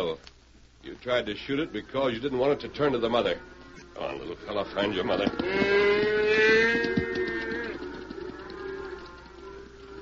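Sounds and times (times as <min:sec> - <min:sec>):
speech: 0:00.0 - 0:07.0
faint outdoor noise: 0:00.0 - 0:10.0
cow mooing: 0:03.3 - 0:10.0.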